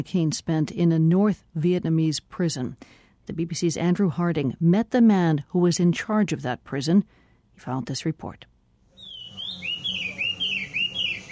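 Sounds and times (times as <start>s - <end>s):
speech: 0.0s - 8.5s
outdoor noise: 0.0s - 11.3s
caged birds chirping in a garden: 8.9s - 11.3s.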